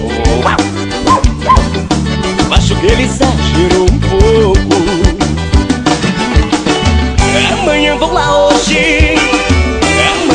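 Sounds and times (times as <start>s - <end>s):
steady music: 0.0s - 10.3s
small dog giving yappy barks: 0.4s - 1.7s
speech: 2.8s - 4.1s.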